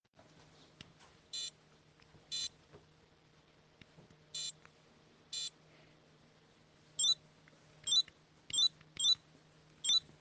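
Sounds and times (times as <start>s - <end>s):
Tamagotchi virtual pet toy beeps: 2.3s - 2.5s, 7.0s - 7.2s, 7.8s - 9.2s, 9.8s - 10.1s.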